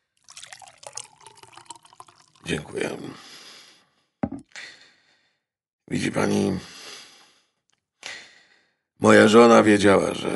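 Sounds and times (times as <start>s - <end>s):
water pouring into a glass: 0.0s - 3.1s
speech: 2.4s - 3.4s, 5.9s - 6.7s, 9.0s - 10.3s.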